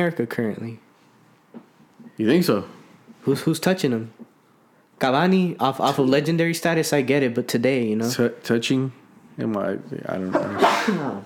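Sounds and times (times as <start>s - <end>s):
speech: 0.0s - 0.8s, 2.2s - 4.2s, 5.0s - 11.2s
sneeze: 10.3s - 11.2s.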